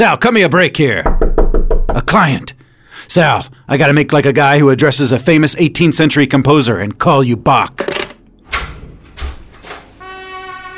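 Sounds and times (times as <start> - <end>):
speech: 0.0 - 1.2, 1.9 - 2.5, 3.1 - 8.0
door opening with hissing whooshes and low thuds: 7.8 - 10.0.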